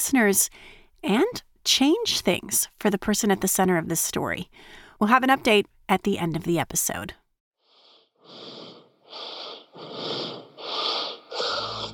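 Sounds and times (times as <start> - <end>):
speech: 0.0 - 7.2
heavy labored breathing on a voicemail: 7.6 - 11.9.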